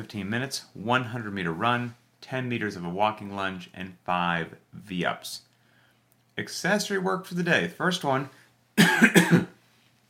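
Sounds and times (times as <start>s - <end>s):
speech: 0.0s - 5.5s, 6.4s - 9.4s
person coughing: 8.8s - 9.6s.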